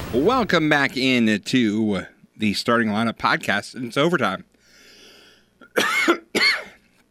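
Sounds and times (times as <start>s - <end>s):
speech: 0.2s - 4.5s, 5.8s - 6.2s
harsh raspy coughs: 5.6s - 6.8s.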